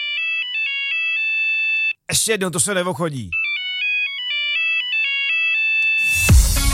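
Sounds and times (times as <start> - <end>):
Nokia 3310 mobile phone ringtone: 0.0 - 2.0, 3.3 - 6.3
speech: 2.1 - 3.4.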